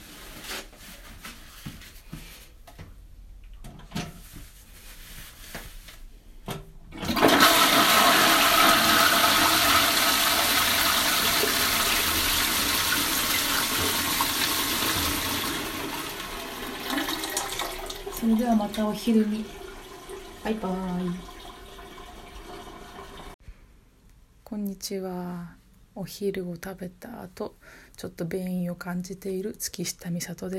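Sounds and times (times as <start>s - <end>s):
toilet flushing: 6.9s - 23.4s
speech: 18.6s - 19.6s, 20.4s - 21.3s, 24.8s - 30.5s.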